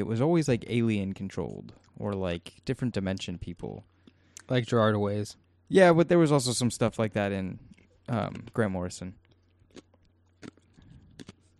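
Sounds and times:
speech: 0.0 - 3.9, 4.5 - 9.2
quiet room hum: 0.0 - 11.5
ice being chewed: 9.2 - 11.5.

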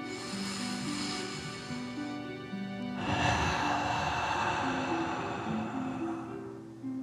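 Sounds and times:
slow deep breaths drawn in and pushed out: 0.0 - 6.6
soft gentle music: 0.0 - 7.0.

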